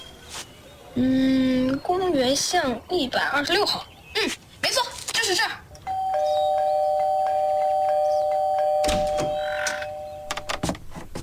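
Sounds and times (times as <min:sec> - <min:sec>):
speech: 0:00.9 - 0:04.4, 0:05.3 - 0:05.6
electric doorbell buzzing: 0:05.9 - 0:10.7.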